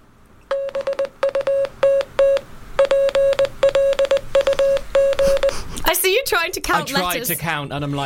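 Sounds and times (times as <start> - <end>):
rapid Morse code beeps in a single steady tone: 0.5 - 5.7
speech: 6.4 - 8.0.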